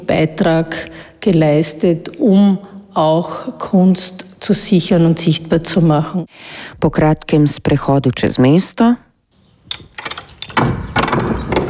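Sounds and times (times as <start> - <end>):
speech: 0.1 - 9.0
sharp metallic clicks of a latch or lock: 9.7 - 11.6.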